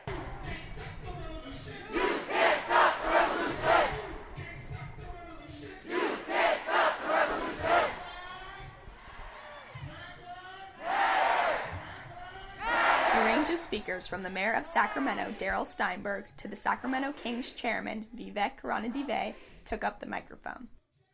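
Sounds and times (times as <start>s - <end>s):
large crowd chanting: 0.0s - 15.6s
speech: 13.8s - 20.8s.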